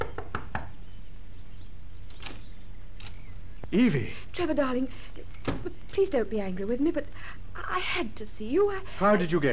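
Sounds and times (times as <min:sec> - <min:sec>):
knocking on the wooden door of a small shack: 0:00.0 - 0:00.7
low hum: 0:00.0 - 0:09.5
speech: 0:03.7 - 0:09.5.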